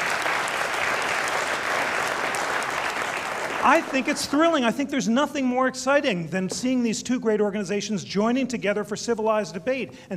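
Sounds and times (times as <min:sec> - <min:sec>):
audience applauding: 0:00.0 - 0:04.5
speech: 0:03.6 - 0:10.1.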